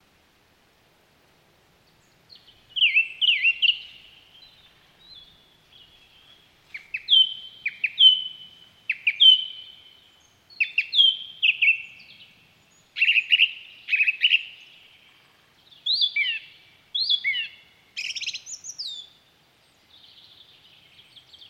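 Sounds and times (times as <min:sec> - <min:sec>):
song thrush singing: 0:01.8 - 0:21.4.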